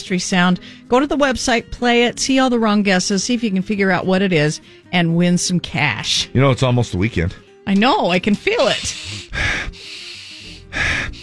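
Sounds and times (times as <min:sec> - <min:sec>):
speech: 0:00.1 - 0:10.0
person sniffing and snorting through the nose: 0:08.4 - 0:11.2.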